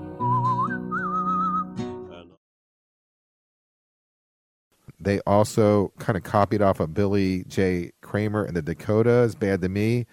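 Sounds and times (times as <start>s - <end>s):
bright whistled melody: 0.0s - 2.3s
steady instrumental backing music: 0.0s - 2.4s
speech: 5.0s - 10.1s.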